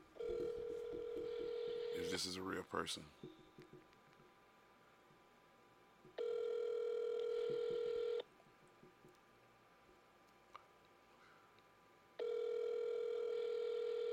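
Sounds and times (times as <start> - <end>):
steady phone dial tone on an outgoing call: 0.2 - 2.2, 6.2 - 8.2, 12.2 - 14.1
speech: 2.1 - 3.4.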